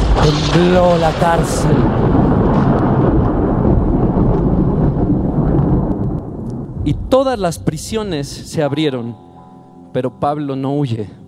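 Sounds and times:
deep sustained rumble of thunder: 0.0 - 8.8
speech: 0.2 - 2.2, 6.9 - 9.3, 10.0 - 11.2.

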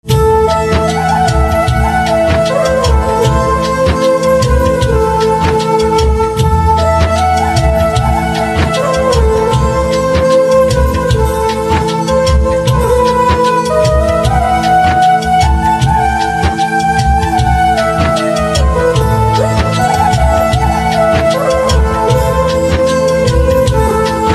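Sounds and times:
flute instrumental ringtone: 0.0 - 24.3.

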